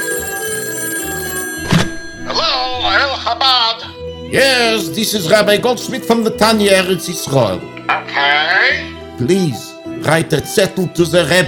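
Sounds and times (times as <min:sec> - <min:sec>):
telephone ringing with bright electronic trill: 0:00.0 - 0:03.4
speech: 0:03.3 - 0:11.4.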